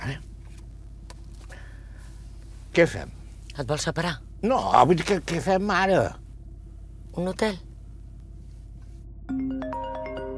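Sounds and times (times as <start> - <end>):
speech: 0.0 - 0.3, 2.8 - 6.2, 7.2 - 7.7
mobile phone electronic ringtone for an incoming call: 9.3 - 10.3.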